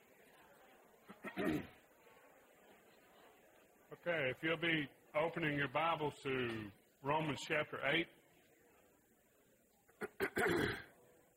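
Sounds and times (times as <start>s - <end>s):
person clearing throat during a class: 1.1s - 1.8s, 10.0s - 11.0s
speech: 1.3s - 1.8s, 4.0s - 8.2s, 10.4s - 10.8s.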